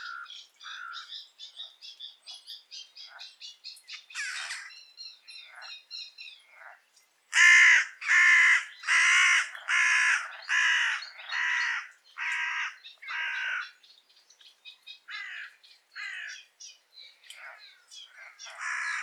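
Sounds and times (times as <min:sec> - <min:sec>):
carrion crow Corvus corone cawing: 0:00.0 - 0:01.1, 0:04.2 - 0:04.7, 0:07.3 - 0:13.8, 0:15.1 - 0:16.4, 0:18.2 - 0:19.0.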